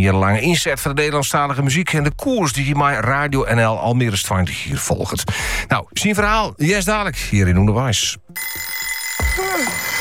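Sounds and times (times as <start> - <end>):
speech: 0.0 - 9.9
alarm clock ringing with a shrill high-pitched tone: 8.4 - 9.9.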